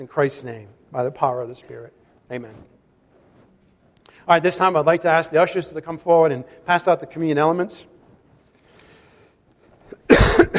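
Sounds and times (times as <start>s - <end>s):
speech: 0.0s - 2.8s, 4.2s - 7.9s
person coughing harshly during a church service: 9.9s - 10.5s.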